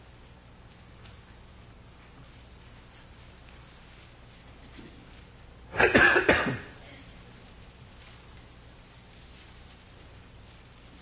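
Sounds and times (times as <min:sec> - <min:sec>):
raspy coughs away from the microphone: 0:05.7 - 0:07.0.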